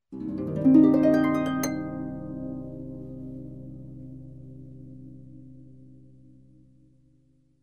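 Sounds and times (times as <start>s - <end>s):
harp playing ascending minor arpeggio: 0.2s - 3.3s.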